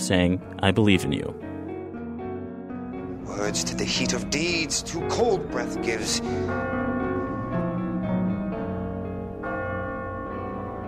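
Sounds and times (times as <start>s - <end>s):
speech: 0.1s - 1.5s, 3.3s - 7.0s
church bell ringing: 3.0s - 10.8s.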